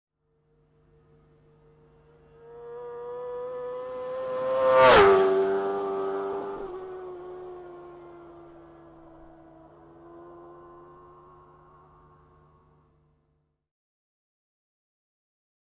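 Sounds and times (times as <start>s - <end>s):
Suzuki GSX-R600 motorcycle: 0.2s - 13.6s.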